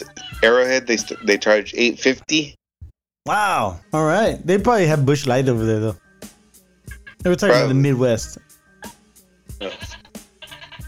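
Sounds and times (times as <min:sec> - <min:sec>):
speech: 0:00.0 - 0:02.6, 0:03.2 - 0:06.0, 0:07.2 - 0:08.5
sheep bleating: 0:06.9 - 0:07.8, 0:09.6 - 0:10.8.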